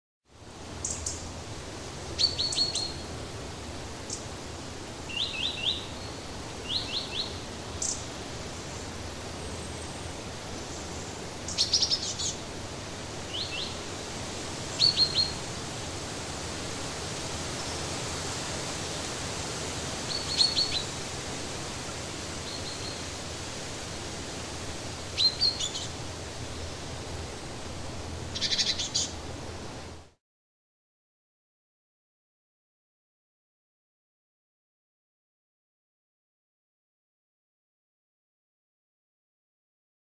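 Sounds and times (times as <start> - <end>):
forest ambience: 0.4 - 30.2.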